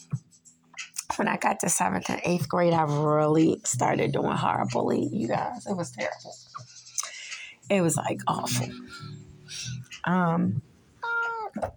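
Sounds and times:
speech: 1.2s - 6.7s, 7.7s - 10.7s
cat meowing: 11.0s - 11.6s.

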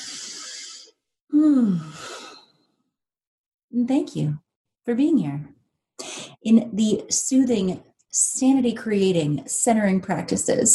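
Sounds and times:
deep breath taken together: 0.0s - 2.8s
speech: 3.8s - 5.6s, 6.4s - 10.7s.

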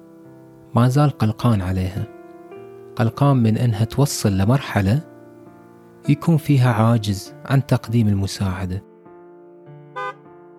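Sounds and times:
speech: 0.7s - 2.2s, 3.0s - 5.1s, 6.0s - 8.9s
car horn honking at a traffic light: 10.0s - 10.2s.

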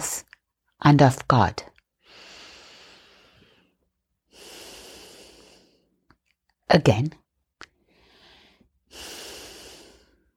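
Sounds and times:
speech: 0.8s - 2.3s, 6.7s - 7.2s
slow deep breaths during a guided relaxation exercise: 2.0s - 6.1s, 7.8s - 10.3s.

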